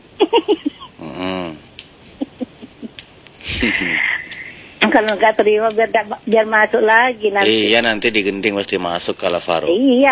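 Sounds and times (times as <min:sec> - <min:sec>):
person snoring: 0:01.0 - 0:01.7
speech: 0:03.6 - 0:04.1, 0:04.9 - 0:10.1.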